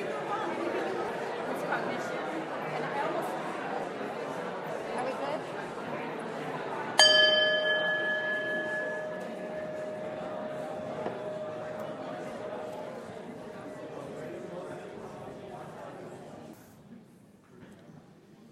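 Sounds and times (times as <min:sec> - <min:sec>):
room full of people chatting in overlapping murmurs: 0:00.0 - 0:18.5
bell rung to call group back: 0:07.0 - 0:13.6.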